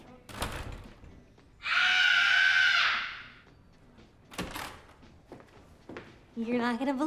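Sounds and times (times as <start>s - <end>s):
person screaming from another room: 1.6s - 3.4s
speech: 6.4s - 7.0s.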